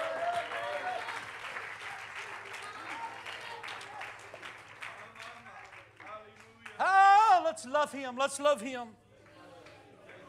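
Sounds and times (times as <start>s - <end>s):
audience at a sermon clapping to praise God: 0.0s - 6.8s
speech: 7.6s - 9.0s.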